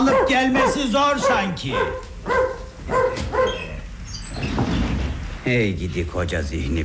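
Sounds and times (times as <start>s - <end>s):
dog barking loudly: 0.0s - 3.7s
speech: 0.2s - 3.7s, 5.4s - 6.8s.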